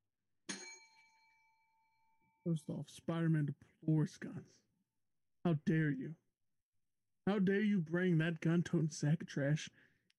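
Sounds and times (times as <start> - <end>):
small bell struck to start a final round: 0.5 - 2.5
speech: 2.4 - 4.6, 5.4 - 6.2, 7.2 - 9.9.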